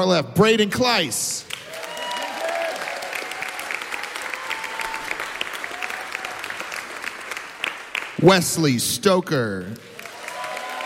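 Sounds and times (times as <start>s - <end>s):
speech: 0.0s - 1.5s, 8.2s - 9.9s
crowd clapping for seniors: 1.4s - 10.8s
faint cheers: 1.6s - 6.7s, 10.0s - 10.8s.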